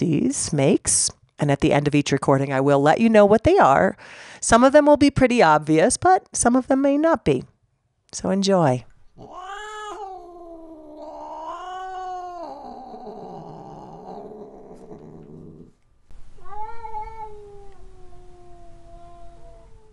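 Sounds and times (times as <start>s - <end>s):
speech: 0.0s - 7.5s, 8.1s - 9.5s
cat caterwauling in long wavering yowls: 9.2s - 15.7s, 16.4s - 19.9s.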